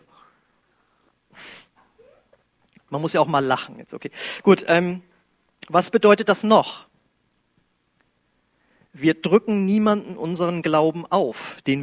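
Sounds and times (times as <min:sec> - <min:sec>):
people breathing quietly: 0:00.0 - 0:02.0, 0:08.4 - 0:09.0
speech: 0:02.9 - 0:05.1, 0:05.7 - 0:06.9, 0:09.0 - 0:11.8.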